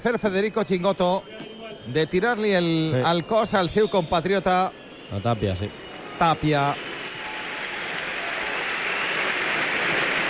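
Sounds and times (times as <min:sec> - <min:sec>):
speech: 0:00.0 - 0:06.9
crowd whistling: 0:00.1 - 0:10.2
large crowd applauding: 0:02.9 - 0:10.2.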